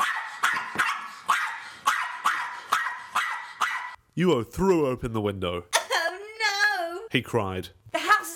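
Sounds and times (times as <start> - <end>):
dog barking: 0.0 - 4.0
speech: 4.2 - 5.8, 7.1 - 7.8.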